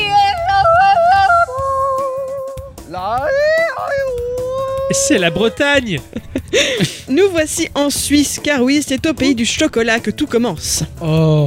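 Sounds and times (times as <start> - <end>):
woman yodeling: 0.0 - 5.6
laughter: 4.8 - 7.5
speech: 4.9 - 11.4.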